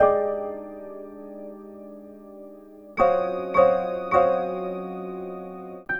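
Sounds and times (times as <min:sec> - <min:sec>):
acoustic piano dance pack: 0:00.0 - 0:05.9.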